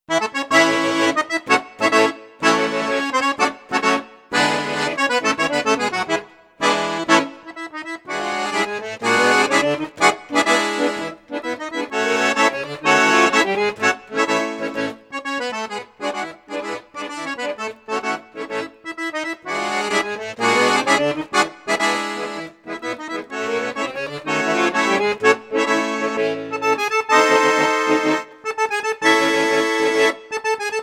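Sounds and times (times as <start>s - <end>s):
Crucianelli Super King accordion on bassoon, flute and piccolo registers: 0.0s - 30.8s.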